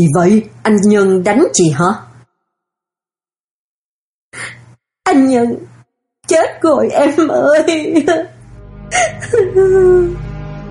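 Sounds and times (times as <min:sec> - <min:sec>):
speech: 0:00.0 - 0:02.1, 0:05.1 - 0:05.7, 0:06.3 - 0:08.3, 0:08.9 - 0:10.2
woman bursting into tears: 0:07.8 - 0:10.2.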